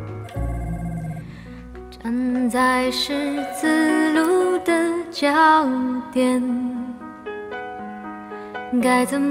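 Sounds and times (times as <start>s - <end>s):
mobile phone ringtone melody: 0.2s - 1.5s
speech: 2.5s - 6.7s, 8.8s - 9.2s.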